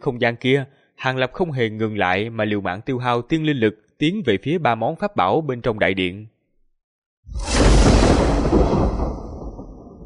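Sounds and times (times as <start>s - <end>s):
speech: 0.0s - 6.3s
thunder rumbling: 7.3s - 10.0s.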